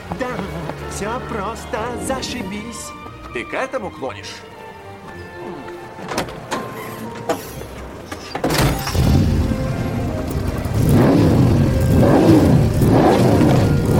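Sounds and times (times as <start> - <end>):
speech: 1.0 - 4.5
car engine revving: 8.8 - 13.9.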